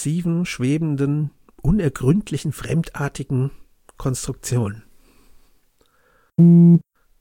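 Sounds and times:
speech: 0:00.0 - 0:04.9, 0:06.4 - 0:06.9
mobile phone vibrating: 0:06.4 - 0:06.8.

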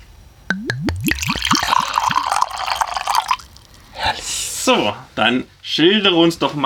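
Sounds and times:
vanilla-cherry mead glugging from a bottle into a glass: 0:00.5 - 0:04.3
speech: 0:04.7 - 0:06.6.

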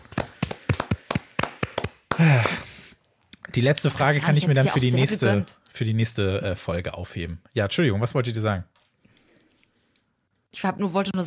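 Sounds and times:
single person hand clapping applauding the winner of a quiz: 0:00.0 - 0:02.7
speech: 0:02.2 - 0:02.6, 0:03.6 - 0:08.8, 0:10.5 - 0:11.2.

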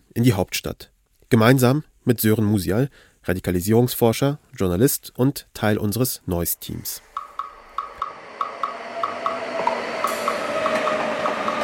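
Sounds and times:
speech: 0:00.2 - 0:07.1
steady broad rolling rail noise of a train arriving at Vienna's main station: 0:07.6 - 0:11.6
train wheels clickety-clack as a train pulls into a main station: 0:07.8 - 0:11.6.

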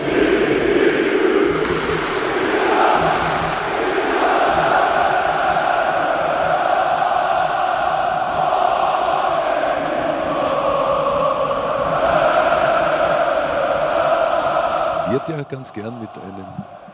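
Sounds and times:
huge football stadium crowd roaring and chanting: 0:00.0 - 0:16.9
speech: 0:15.5 - 0:16.8.

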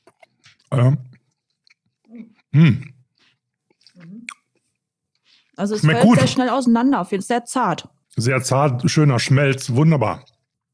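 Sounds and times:
chewing and crunching while biting into cake: 0:00.0 - 0:06.0, 0:09.7 - 0:10.7
speech: 0:00.7 - 0:01.1, 0:02.2 - 0:02.9, 0:05.6 - 0:10.4
voiced mumbles of appreciation: 0:02.1 - 0:02.9
wet mouth smacks: 0:03.7 - 0:04.6.

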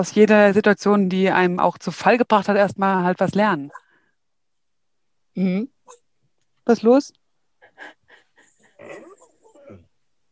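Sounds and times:
speech: 0:00.0 - 0:03.8, 0:05.4 - 0:06.0, 0:06.7 - 0:07.2
dog whining, huffing and yelping at someone at the door: 0:08.5 - 0:09.8.

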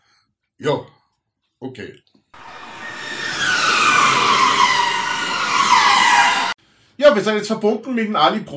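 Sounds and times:
speech: 0:00.6 - 0:01.0, 0:01.6 - 0:02.5, 0:07.0 - 0:08.5
race car high-revving engine on a fast lap during free practice: 0:02.4 - 0:06.6.

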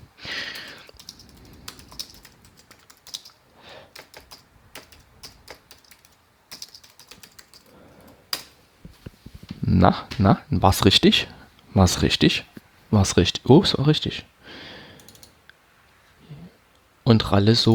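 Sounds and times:
computer keyboard clacks as a password is typed: 0:00.4 - 0:08.5, 0:15.0 - 0:15.4
speech: 0:09.7 - 0:14.3, 0:17.1 - 0:17.7.

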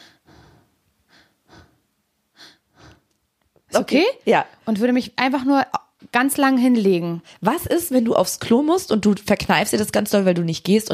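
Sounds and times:
quick shallow quiet breathing: 0:00.0 - 0:03.1
speech: 0:03.8 - 0:10.9.

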